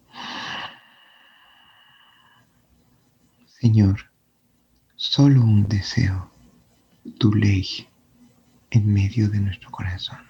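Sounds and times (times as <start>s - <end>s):
deep inhalation during a guided breathing meditation: 0.1s - 2.5s
speech: 3.6s - 4.1s, 5.0s - 6.3s, 7.1s - 7.9s, 8.7s - 10.2s.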